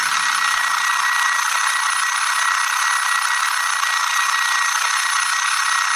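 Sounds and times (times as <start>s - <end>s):
alarm clock ringing with a harsh metallic jangle: 0.0s - 5.9s.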